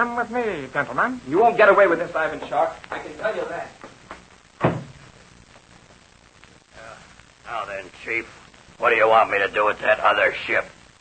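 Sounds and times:
speech: 0:00.0 - 0:03.9, 0:07.5 - 0:10.9
quiet hum: 0:00.0 - 0:10.9
plane rear compartment door thudding shut: 0:04.6 - 0:05.0.

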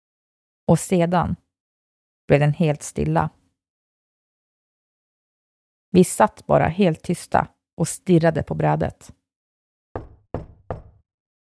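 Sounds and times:
speech: 0:00.7 - 0:01.4, 0:02.3 - 0:03.4, 0:05.9 - 0:09.2
sharp knocks on a window: 0:10.0 - 0:11.1.

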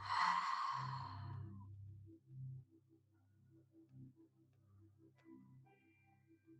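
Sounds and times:
deep breath in and out during a guided breathing exercise: 0:00.0 - 0:01.4
faint low drone: 0:00.0 - 0:04.3.

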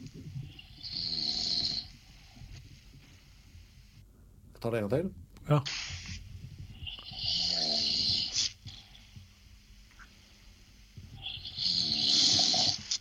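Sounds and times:
quiet breathing: 0:00.0 - 0:04.5, 0:05.6 - 0:13.0
man snoring: 0:00.6 - 0:02.0, 0:06.8 - 0:08.8, 0:11.2 - 0:13.0
speech: 0:04.6 - 0:05.8.

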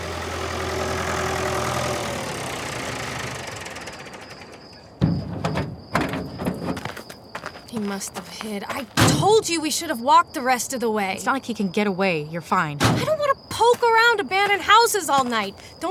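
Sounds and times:
car engine humming: 0:00.0 - 0:06.8
thin mechanical whine: 0:00.0 - 0:06.8
speech: 0:07.8 - 0:15.8.

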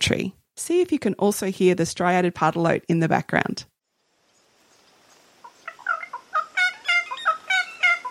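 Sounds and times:
speech: 0:00.1 - 0:03.7
Little Wattlebird singing while taking a bath in Brisbane Water National Park, Australia: 0:04.3 - 0:08.1.

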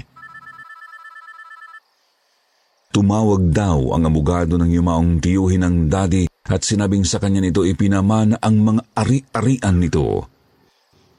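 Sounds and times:
cellphone ringing with trilling electronic tone: 0:00.0 - 0:01.9
speech: 0:03.0 - 0:10.3.

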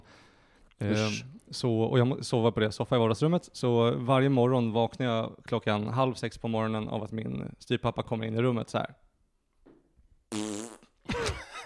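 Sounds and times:
speech: 0:00.8 - 0:09.0
voice imitating a loud buzzing fart: 0:10.3 - 0:11.0.

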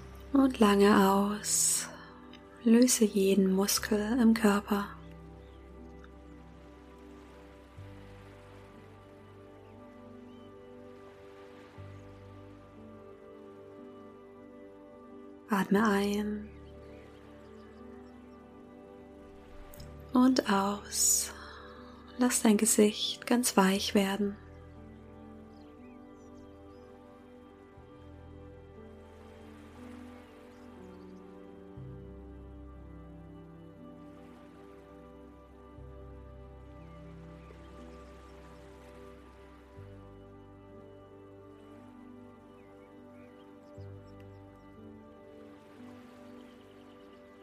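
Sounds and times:
speech: 0:00.3 - 0:02.0, 0:02.6 - 0:05.0, 0:15.6 - 0:16.5, 0:20.2 - 0:21.4, 0:22.2 - 0:24.4
gentle lake water lapping at a shore: 0:05.4 - 0:13.8, 0:29.0 - 0:31.6, 0:34.0 - 0:35.4, 0:36.6 - 0:40.0, 0:44.8 - 0:47.4.

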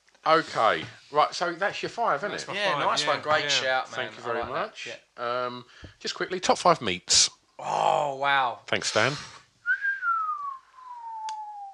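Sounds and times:
speech: 0:00.2 - 0:09.4
person whistling one sustained note: 0:09.6 - 0:11.7
faint click: 0:11.2 - 0:11.4.

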